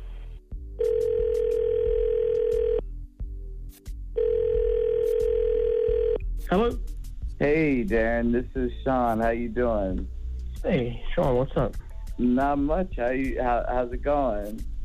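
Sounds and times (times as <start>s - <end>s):
long steady telephone tones: 0.8s - 2.8s, 4.2s - 6.2s
speech: 7.4s - 14.7s.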